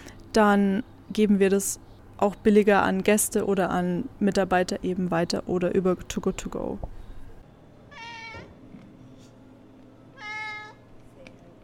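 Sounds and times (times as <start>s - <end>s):
low hum: 0.0s - 11.6s
speech: 0.4s - 7.0s
cat meowing: 7.9s - 8.6s, 10.2s - 10.8s.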